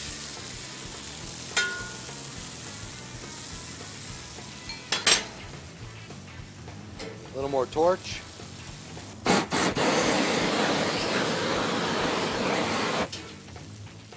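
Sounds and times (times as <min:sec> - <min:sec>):
food with salt and ground pepper sizzling while stir-fried: 0:00.0 - 0:14.1
metal utensil clinking against the pan: 0:01.5 - 0:02.2, 0:04.6 - 0:05.4
speech: 0:07.4 - 0:08.3.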